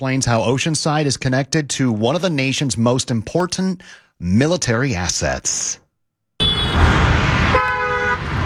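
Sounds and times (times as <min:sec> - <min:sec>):
speech: 0:00.0 - 0:05.8
car horn blaring: 0:06.4 - 0:08.4
highway traffic on I-5 in San Diego's North County: 0:06.4 - 0:08.4.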